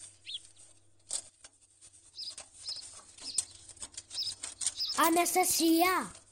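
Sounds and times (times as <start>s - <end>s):
sparrow wings fluttering in a fireplace: 0.0s - 5.8s
faint high sparrow chirps: 2.2s - 5.1s
speech: 5.0s - 6.2s.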